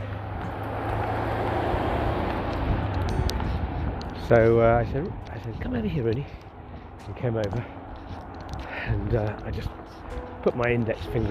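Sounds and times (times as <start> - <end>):
car driving past: 0.0 - 4.5
speech: 4.3 - 6.5, 7.1 - 7.8, 8.9 - 9.8, 10.4 - 11.2.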